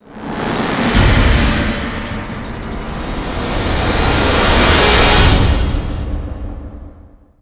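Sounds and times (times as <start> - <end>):
string swell hit from a game: 0.0 - 6.5.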